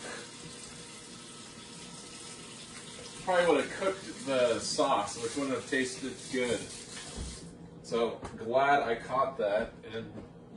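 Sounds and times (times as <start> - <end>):
hot water running from a tap for thawing: 0.0 - 7.5
speech: 3.3 - 7.3, 7.9 - 10.5.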